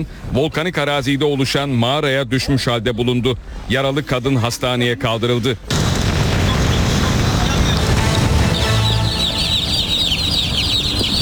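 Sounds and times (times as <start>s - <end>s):
speech: 0.0s - 5.9s
loud steady noise: 5.7s - 11.2s
chicks cheeping at an intercity bus terminal: 7.8s - 11.2s.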